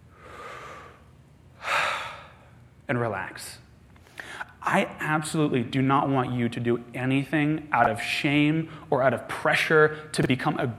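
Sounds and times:
deep breath taken during a church sermon: 0:00.1 - 0:02.5, 0:04.0 - 0:04.6
speech: 0:02.9 - 0:03.6, 0:04.3 - 0:10.7.

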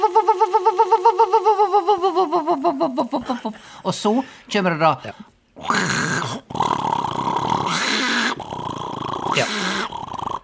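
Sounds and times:
laughter: 0:00.0 - 0:03.6
person vocally imitating a washing machine groaning after spinning: 0:00.0 - 0:03.7, 0:05.6 - 0:10.4
speech: 0:00.1 - 0:01.5, 0:02.9 - 0:06.1.

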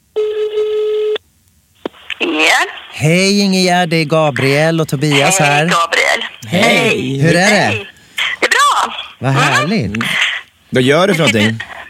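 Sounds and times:
ringback tone from an outgoing phone call: 0:00.2 - 0:01.2
speech: 0:02.2 - 0:07.9, 0:09.2 - 0:11.8.

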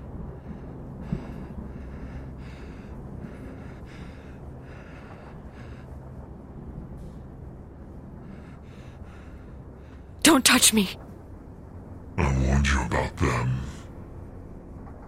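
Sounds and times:
heavy anxious breathing: 0:00.3 - 0:06.4, 0:08.1 - 0:10.2, 0:12.2 - 0:13.9
speech: 0:10.3 - 0:11.0, 0:12.6 - 0:13.7.

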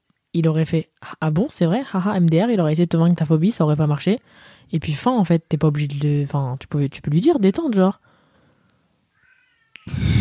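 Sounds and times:
speech: 0:00.4 - 0:08.0
cat meowing: 0:09.1 - 0:09.9.

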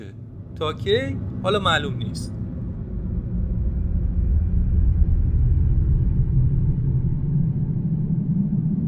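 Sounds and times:
speech: 0:00.0 - 0:02.3
Tōhoku earthquake deep rumble recorded underground: 0:00.2 - 0:08.7.

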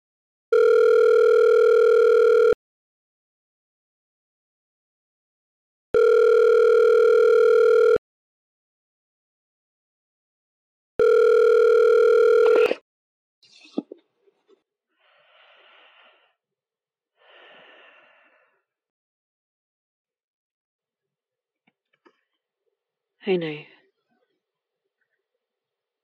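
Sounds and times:
telephone ringback tone: 0:00.5 - 0:02.6, 0:06.0 - 0:08.0, 0:11.0 - 0:12.8
speech: 0:23.3 - 0:23.7.

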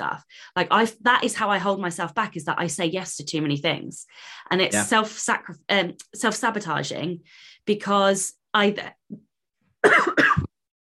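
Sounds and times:
speech: 0:00.0 - 0:10.5
woman with COVID-19 coughing hard: 0:09.8 - 0:10.6.

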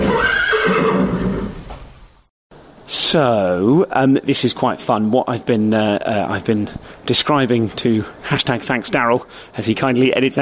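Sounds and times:
horse neighing loudly: 0:00.0 - 0:01.7
speech: 0:03.1 - 0:10.4.

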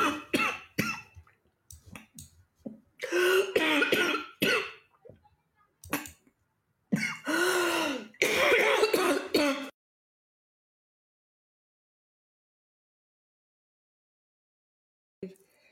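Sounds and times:
coughing and throat clearing: 0:00.0 - 0:01.2, 0:03.0 - 0:04.9, 0:06.9 - 0:09.8.

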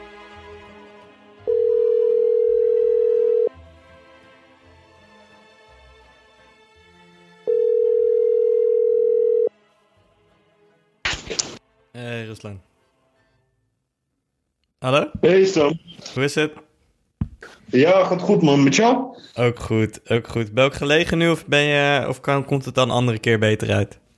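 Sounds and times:
outgoing phone call ringback tone: 0:01.5 - 0:03.5, 0:07.5 - 0:09.5
speech: 0:12.4 - 0:12.7, 0:14.8 - 0:16.6, 0:17.7 - 0:24.0.

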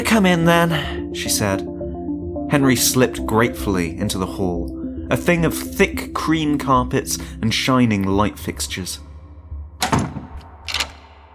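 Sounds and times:
speech: 0:00.0 - 0:01.7, 0:02.5 - 0:09.1
front door opening onto a carpeted hall and being shut: 0:09.8 - 0:11.2
door latch click: 0:09.8 - 0:11.3.

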